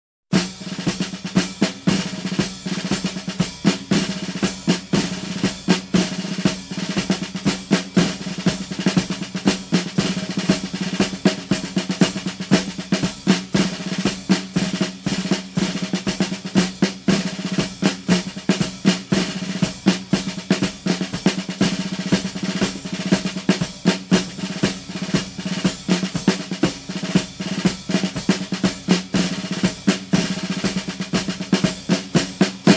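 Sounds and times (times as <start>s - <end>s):
marching drum rhythm: 0.3s - 32.7s.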